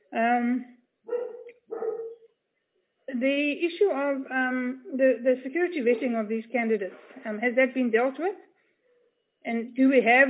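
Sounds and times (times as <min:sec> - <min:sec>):
speech: 0:00.2 - 0:00.8, 0:03.2 - 0:08.5, 0:09.4 - 0:10.2
pet dog barking: 0:01.1 - 0:02.3.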